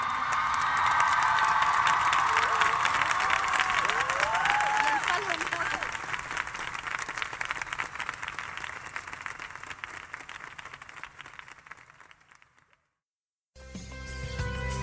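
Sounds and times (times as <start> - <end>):
audience cheering at a live event: 0.0 - 10.4
audience applause at a live event: 0.0 - 12.9.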